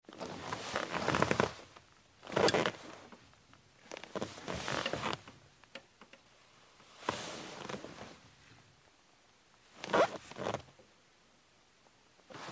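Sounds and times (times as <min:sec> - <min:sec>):
leather chair creaking: 0:00.1 - 0:03.2, 0:03.8 - 0:05.3, 0:07.0 - 0:08.2, 0:09.8 - 0:10.7, 0:12.3 - 0:12.5.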